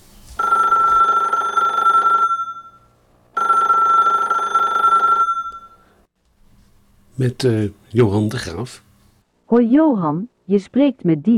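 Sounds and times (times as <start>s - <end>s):
telephone ringing: 0.4s - 6.0s
speech: 7.2s - 8.9s, 9.5s - 11.3s.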